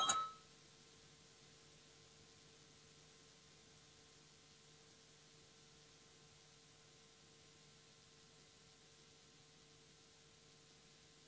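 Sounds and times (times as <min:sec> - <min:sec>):
parliament voting bell tone: 0:00.0 - 0:00.4
quiet noise: 0:00.0 - 0:11.2.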